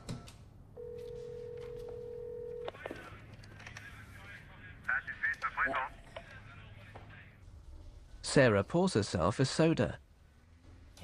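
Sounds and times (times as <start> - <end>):
steady telephone tone from a home phone: 0.8 - 2.8
speech: 8.3 - 10.0.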